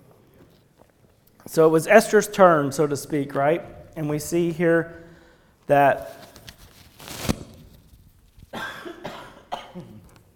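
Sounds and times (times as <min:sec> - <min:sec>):
speech: 0:01.4 - 0:05.0, 0:05.7 - 0:06.3
slight cough: 0:08.5 - 0:10.0.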